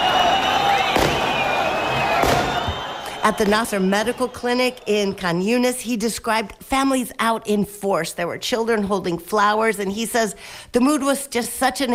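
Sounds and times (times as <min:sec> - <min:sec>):
people shouting: 0:00.0 - 0:04.3
high whistles: 0:00.0 - 0:05.4
steady roar of a cheering crowd: 0:00.0 - 0:05.8
sharp gunshot-like bangs of celebratory gunfire: 0:00.9 - 0:01.3, 0:02.2 - 0:02.6
speech: 0:03.3 - 0:11.9.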